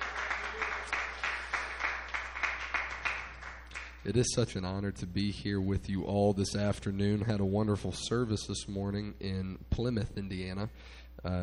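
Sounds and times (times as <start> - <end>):
church audience applause: 0.0 - 4.0
speech: 4.0 - 11.4.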